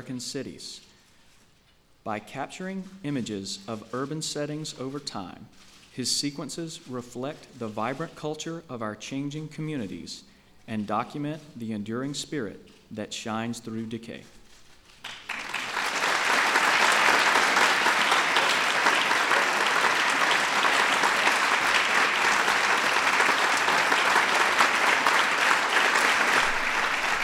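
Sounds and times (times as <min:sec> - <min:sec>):
speech: 0:00.0 - 0:00.9, 0:02.0 - 0:14.4
large audience applauding: 0:15.0 - 0:27.2.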